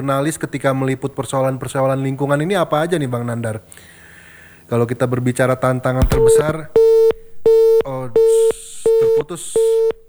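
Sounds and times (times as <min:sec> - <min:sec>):
speech: 0:00.0 - 0:04.0, 0:04.7 - 0:07.1, 0:07.8 - 0:10.0
telephone busy tone after a dropped call: 0:06.0 - 0:10.0.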